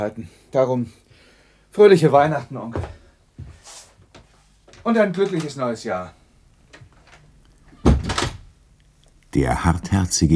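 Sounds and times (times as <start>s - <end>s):
speech: 0.0s - 1.0s, 1.7s - 3.0s, 4.8s - 6.2s, 9.3s - 10.3s
office door thudding shut: 7.0s - 8.5s.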